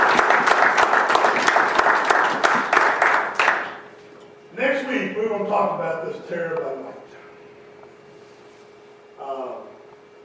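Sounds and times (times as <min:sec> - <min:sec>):
audience applause with many hands clapping: 0:00.0 - 0:03.8
speech: 0:05.4 - 0:06.9.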